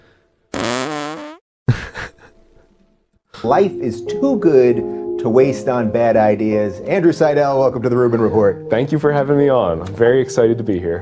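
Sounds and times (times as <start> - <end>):
fart sound effects: 0.5 - 1.4
speech: 3.4 - 11.0.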